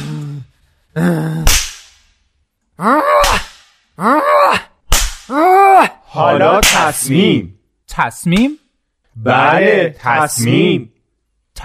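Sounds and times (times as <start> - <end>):
moaning: 0.0 - 1.5, 2.8 - 6.5
speech: 1.0 - 1.7, 6.2 - 8.6, 9.2 - 10.9
whip cracks: 1.4 - 2.1, 3.2 - 3.8, 4.9 - 5.4
pained cries and groans: 2.8 - 6.1.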